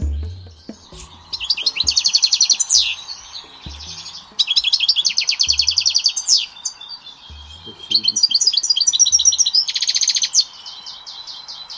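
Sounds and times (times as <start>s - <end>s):
soft low thuds: 0.0s - 5.8s, 7.3s - 8.0s
European goldfinch singing: 0.0s - 11.7s.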